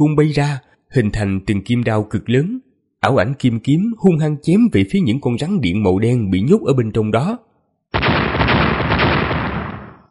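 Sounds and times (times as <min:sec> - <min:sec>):
speech: 0:00.0 - 0:08.2
series of explosions: 0:07.9 - 0:10.1.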